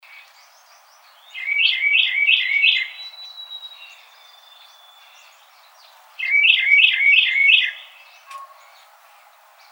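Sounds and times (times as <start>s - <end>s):
Carolina wren singing rolling two-note phrases: 0.0s - 9.7s
faint chips: 8.2s - 9.4s.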